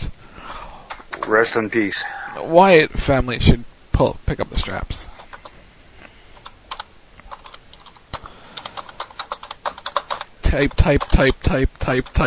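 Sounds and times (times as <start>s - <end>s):
speech: 1.3s - 5.1s, 10.5s - 12.2s
two-finger typing on a computer keyboard: 5.2s - 5.6s, 6.4s - 12.2s.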